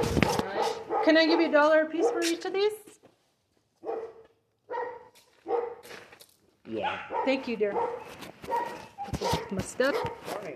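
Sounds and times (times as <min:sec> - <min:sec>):
dog barking: 0:00.2 - 0:02.5, 0:03.8 - 0:05.9, 0:06.8 - 0:10.5
speech: 0:01.0 - 0:02.9, 0:06.7 - 0:10.5.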